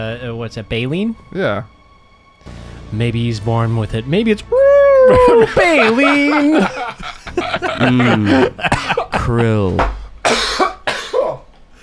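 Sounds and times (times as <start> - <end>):
speech: 0.0 - 1.8, 2.4 - 10.6
laughter: 4.5 - 10.1
harsh coughs from inhaling spicy burnt cooking smoke: 6.0 - 11.6.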